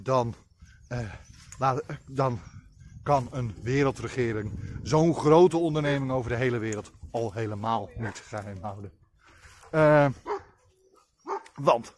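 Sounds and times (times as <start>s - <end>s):
speech: 0.0s - 9.0s, 9.7s - 10.3s, 11.6s - 11.9s
small dog barking and yapping: 10.3s - 10.6s, 11.2s - 11.6s.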